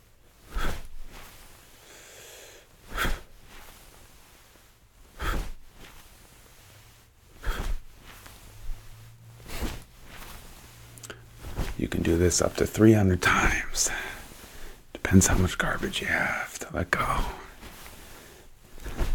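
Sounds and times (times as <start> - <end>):
faint rustling: 0.0 - 19.1
deep breathing in and out during a chi-waking exercise: 0.4 - 16.4, 17.0 - 19.1
speech: 11.8 - 14.0, 15.1 - 17.4.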